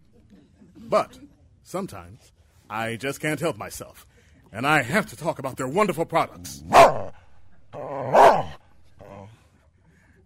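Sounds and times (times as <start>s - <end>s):
speech: 0.9s - 7.0s
dog barking and growling: 6.4s - 9.2s.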